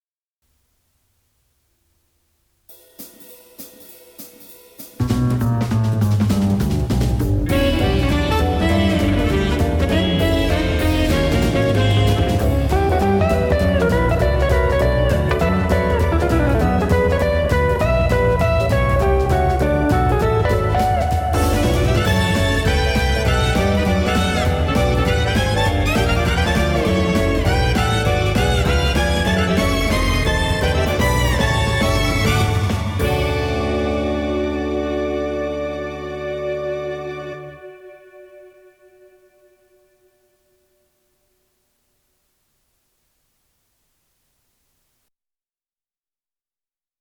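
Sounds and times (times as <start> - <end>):
metallic jazz music from tc-k777 tape deck: 3.0 - 40.0.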